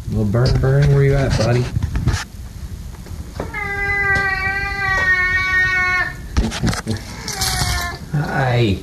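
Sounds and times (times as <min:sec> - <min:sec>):
speech: 0:00.2 - 0:02.3, 0:08.4 - 0:08.8
cat at home yowling meow: 0:03.4 - 0:06.4, 0:07.2 - 0:08.1.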